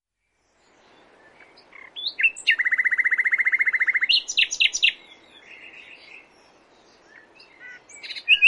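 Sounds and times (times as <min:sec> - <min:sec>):
common nightingale song with rattles, chattering and twittering: 0:00.1 - 0:08.4.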